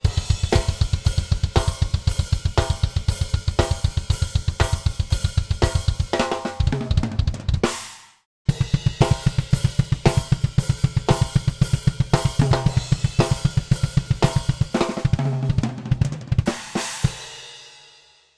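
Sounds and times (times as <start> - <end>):
drum kit: 0.0 - 18.3.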